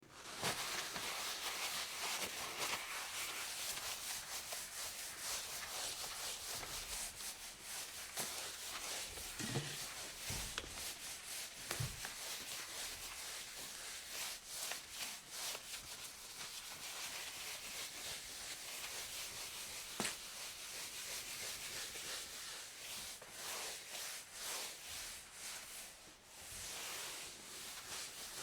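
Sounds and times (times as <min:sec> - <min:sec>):
wiping off a counter: 0:00.2 - 0:28.4.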